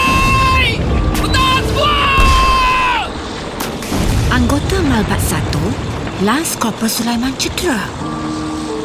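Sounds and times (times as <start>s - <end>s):
heavy continuous rumble of explosions: 0.0s - 8.0s
high whistle falling in pitch: 2.0s - 3.2s
speech: 6.2s - 8.2s.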